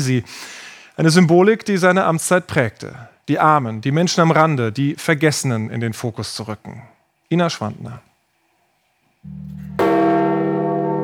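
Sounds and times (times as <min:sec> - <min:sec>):
speech: 0:00.0 - 0:08.1, 0:09.2 - 0:09.7
deep church bell at St. Peter's Basilica tolling at midday for the Pope's death: 0:09.3 - 0:11.0.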